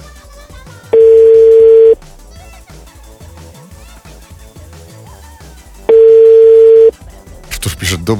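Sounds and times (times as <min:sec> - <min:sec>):
low busy background of music or room noise: 0:00.0 - 0:08.1
long steady telephone tones: 0:01.0 - 0:02.0, 0:05.9 - 0:06.9
speech: 0:08.0 - 0:08.1.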